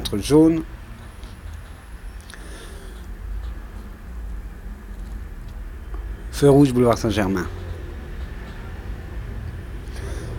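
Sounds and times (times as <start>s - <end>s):
street traffic of cars, vans, taxis, a moped and a motorbike: 0.0s - 10.3s
speech: 0.1s - 0.8s, 6.4s - 7.6s.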